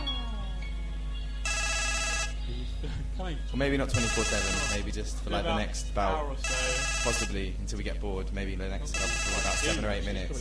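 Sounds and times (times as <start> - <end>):
mobile phone ringtone electronic melody: 0.0 - 2.8, 3.9 - 4.9, 6.4 - 7.4, 8.9 - 9.9
speech: 3.2 - 10.3.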